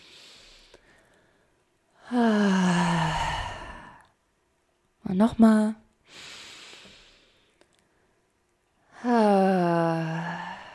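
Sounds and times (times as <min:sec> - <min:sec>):
deep drawn-out breath in during a guided breathing exercise: 0:00.0 - 0:04.1, 0:06.1 - 0:07.6, 0:09.9 - 0:10.7
speech: 0:02.1 - 0:02.6, 0:05.1 - 0:06.2.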